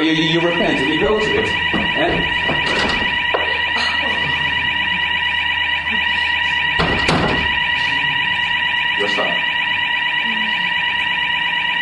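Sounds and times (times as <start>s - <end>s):
fire alarm ringing: 0.0s - 11.8s
speech: 0.1s - 3.0s
dull thumps: 0.7s - 3.6s.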